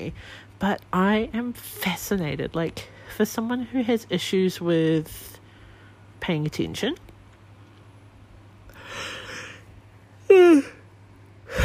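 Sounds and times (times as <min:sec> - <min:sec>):
speech: 0:00.0 - 0:05.4, 0:06.2 - 0:07.0
person yawning: 0:10.2 - 0:10.8.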